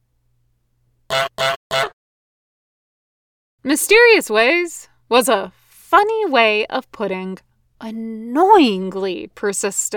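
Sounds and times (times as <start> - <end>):
goose honking: 1.1 - 2.0
speech: 3.6 - 9.9.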